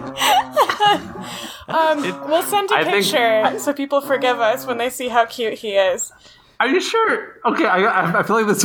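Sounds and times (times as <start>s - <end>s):
puppy grumbling: 0.0s - 5.1s
speech: 1.7s - 8.6s.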